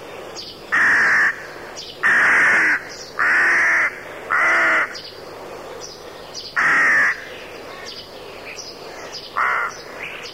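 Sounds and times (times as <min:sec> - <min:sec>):
rook cawing: 0:00.7 - 0:05.1, 0:06.6 - 0:08.0, 0:08.9 - 0:10.2.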